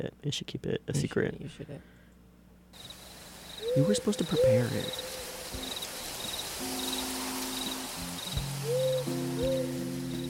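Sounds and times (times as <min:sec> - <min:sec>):
speech: 0:00.0 - 0:02.0, 0:03.7 - 0:05.7
faint insect noise: 0:02.6 - 0:10.2
crickets chirping: 0:02.7 - 0:10.2
burrowing owl giving soft low cooing hoots: 0:02.8 - 0:10.0.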